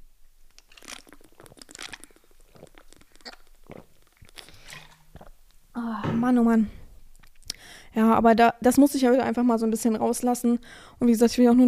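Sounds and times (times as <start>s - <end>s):
crackly crunchy mouth and handling noises: 0.4s - 5.6s
slurps and swallows: 0.6s - 5.4s
person sipping a drink: 0.6s - 5.5s
speech: 6.2s - 6.8s, 8.0s - 11.6s.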